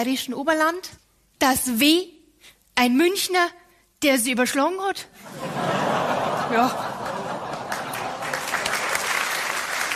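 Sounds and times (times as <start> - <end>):
speech: 0.0 - 5.9, 6.5 - 6.9
laughter: 5.2 - 9.0
dense continuous audience applause: 6.1 - 9.9.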